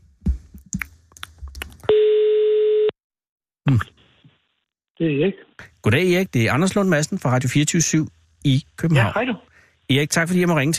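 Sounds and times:
telephone ringing tone of an outgoing call: 1.9s - 2.9s
speech: 5.0s - 10.7s.

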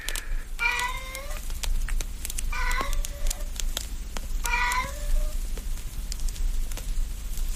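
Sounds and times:
faint crackling hum: 0.0s - 7.5s
cat meowing, wanting to go outside: 0.1s - 1.4s, 2.5s - 3.6s, 4.4s - 5.4s.

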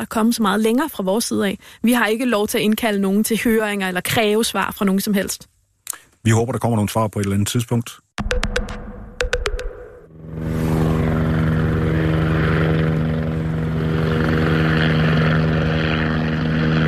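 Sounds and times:
speech: 0.0s - 5.6s, 6.2s - 8.3s
police helicopter rotor and engine droning over a city district: 10.0s - 16.8s.

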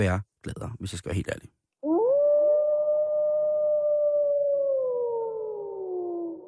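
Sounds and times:
speech: 0.0s - 1.6s
single wolf howling: 1.8s - 6.4s.

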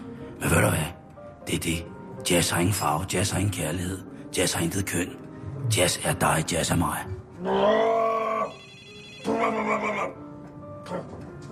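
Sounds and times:
speech: 0.4s - 8.0s
telephone ringing: 8.5s - 9.6s.

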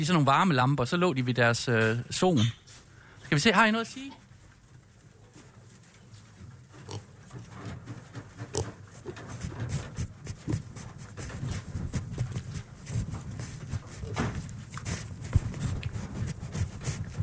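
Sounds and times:
speech: 0.0s - 2.6s, 3.3s - 4.2s
piglets snuffling and grunting: 6.8s - 7.2s
piglets nibbling at the microphone and windshield: 6.9s - 17.2s.

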